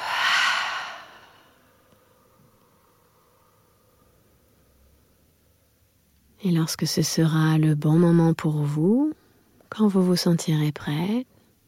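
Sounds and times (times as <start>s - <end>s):
single forceful breath blown out through the mouth: 0.0s - 1.6s
speech: 6.4s - 11.3s.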